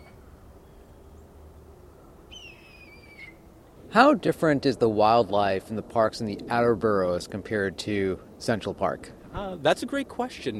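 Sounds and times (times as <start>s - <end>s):
songbird imitating a red-tailed hawk screech: 0.0s - 0.2s, 2.3s - 3.4s
steady low outdoor rumble: 0.0s - 10.5s
speech: 3.9s - 10.5s.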